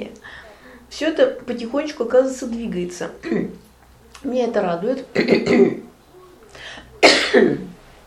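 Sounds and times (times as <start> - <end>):
speech: 1.1 - 3.6, 4.2 - 5.9, 7.3 - 7.7
person coughing from something caught in the throat: 5.2 - 5.9, 7.0 - 7.7.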